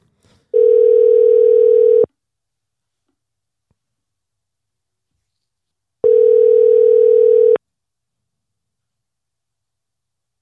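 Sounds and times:
electronic phone ringback tone of outgoing call: 0.6 - 2.1, 6.0 - 7.6.

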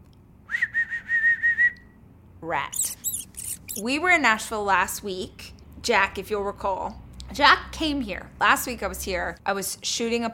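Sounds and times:
person whistling through teeth: 0.5 - 1.9, 2.8 - 3.8
speech: 2.4 - 3.0, 3.8 - 10.3.

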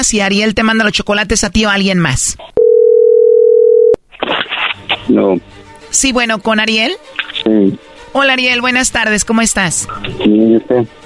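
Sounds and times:
speech: 0.0 - 2.7, 5.1 - 11.0
telephone dial tone while dialing a call: 2.6 - 4.0.

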